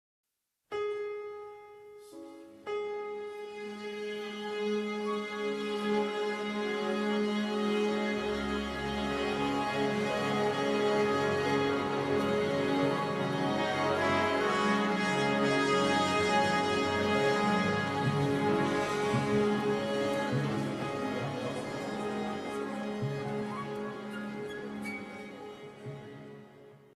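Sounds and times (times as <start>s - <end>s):
orchestra tuning: 2.8s - 26.8s.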